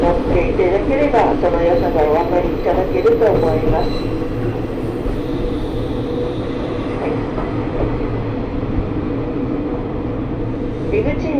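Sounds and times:
sightseeing trolley train rumbling on rails in Japan, heard on board: 0:00.0 - 0:11.3
speech: 0:02.9 - 0:04.6.

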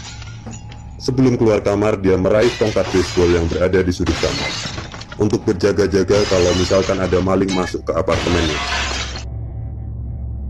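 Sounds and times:
mirror glass shattering in an apartment living room: 0:00.0 - 0:00.8, 0:02.3 - 0:05.4, 0:06.1 - 0:09.3
low steady rumbling hum: 0:00.0 - 0:10.4
speech: 0:01.0 - 0:08.9.

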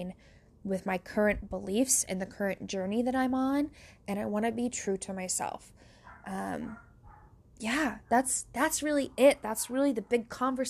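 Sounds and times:
speech: 0:00.0 - 0:06.8, 0:07.6 - 0:10.6
dog barking indoors: 0:06.0 - 0:07.3.

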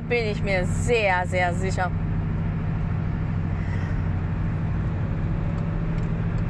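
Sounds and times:
car interior road noise on a motorway: 0:00.0 - 0:06.4
low car engine drone: 0:00.0 - 0:06.4
speech: 0:00.1 - 0:02.0.

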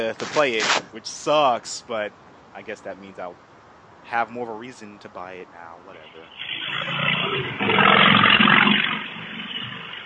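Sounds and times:
speech: 0:00.0 - 0:03.5, 0:04.1 - 0:08.2
motorcycle roaring past outside: 0:06.4 - 0:10.0.

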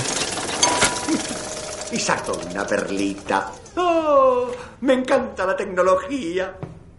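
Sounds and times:
electromechanical tooth-processing machine whirring and rattling: 0:00.0 - 0:04.1
speech: 0:01.9 - 0:06.7.

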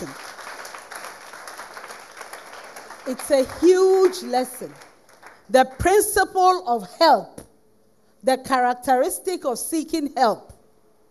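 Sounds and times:
audience clapping and applause: 0:00.0 - 0:06.0
speech: 0:03.1 - 0:04.9, 0:05.5 - 0:07.4, 0:08.2 - 0:10.5.

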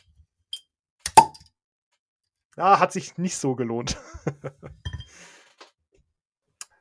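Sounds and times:
beer bottle being opened: 0:01.1 - 0:01.5
speech: 0:02.6 - 0:05.3
laughter: 0:03.8 - 0:04.8.

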